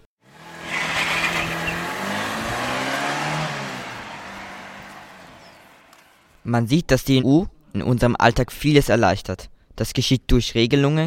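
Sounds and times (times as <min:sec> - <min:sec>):
car engine starting and car driving off: 0:00.2 - 0:06.4
speech: 0:06.5 - 0:11.0.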